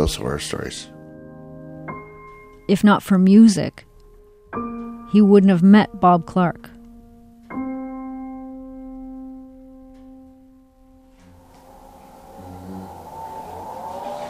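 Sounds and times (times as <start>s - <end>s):
speech: 0.0s - 1.0s, 2.7s - 3.9s, 4.5s - 6.7s
motorized wheelchair powering on with a sustained electronic harmonic tone: 10.8s - 14.2s.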